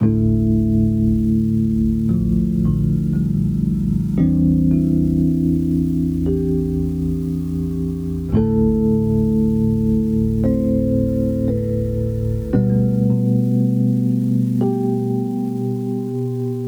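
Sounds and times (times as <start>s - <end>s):
tonal bells loop in A minor: 0.0s - 16.6s.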